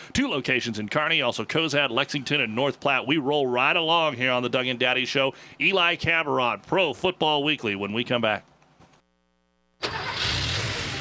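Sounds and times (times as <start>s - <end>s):
speech: 0.1s - 8.5s
engine starting and running on motor oil: 9.8s - 10.9s.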